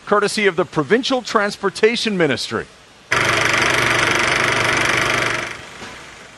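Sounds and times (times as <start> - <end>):
speech: 0.1 - 2.8
old-fashioned film projector running with mechanical whir and fine clatter: 3.1 - 6.2.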